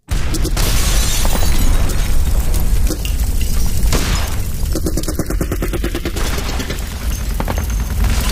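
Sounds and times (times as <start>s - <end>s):
heavy explosions booming: 0.0s - 8.3s
rapid rifle shots and bursts: 3.9s - 8.3s.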